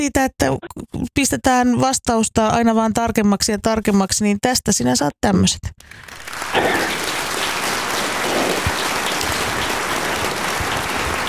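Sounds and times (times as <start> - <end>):
speech: 0.0 - 7.0
crowd applause: 5.9 - 11.2.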